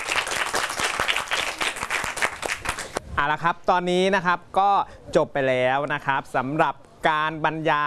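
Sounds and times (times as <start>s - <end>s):
audience of students applauding: 0.0s - 3.0s
speech: 3.2s - 7.8s.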